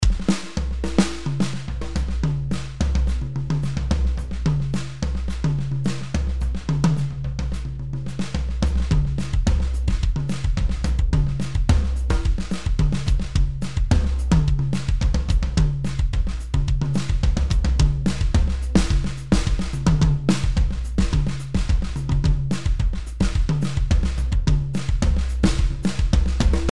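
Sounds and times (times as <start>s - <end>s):
studio rock drums: 0.0s - 26.7s.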